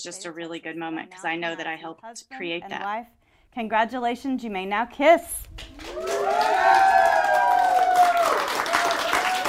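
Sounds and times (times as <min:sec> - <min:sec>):
speech: 0:00.0 - 0:06.9
wedding guests applauding: 0:05.6 - 0:09.4
wedding guests cheering and whooping: 0:05.7 - 0:09.4.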